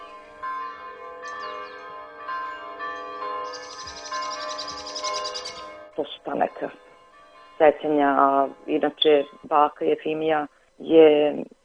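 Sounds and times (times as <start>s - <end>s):
church bells ringing: 0.0s - 9.8s
speech: 6.0s - 6.9s, 7.6s - 11.5s.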